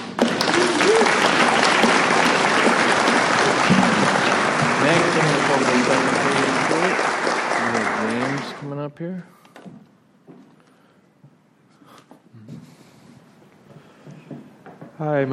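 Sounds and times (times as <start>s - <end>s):
audience at a recovery group meeting clapping: 0.0s - 8.8s
speech: 8.9s - 9.8s, 15.0s - 15.3s.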